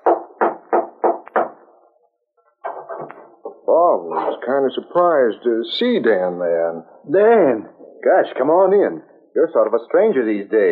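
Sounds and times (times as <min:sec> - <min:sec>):
knocking on the door of a house: 0:00.0 - 0:01.6
speech: 0:04.0 - 0:10.7.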